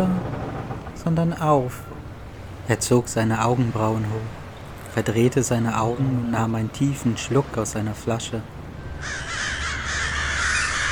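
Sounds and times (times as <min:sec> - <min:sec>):
low rumble: 0:00.0 - 0:10.9
speech: 0:01.0 - 0:02.0, 0:02.7 - 0:04.4, 0:05.0 - 0:09.3
flock of crows cawing loudly: 0:09.0 - 0:10.9.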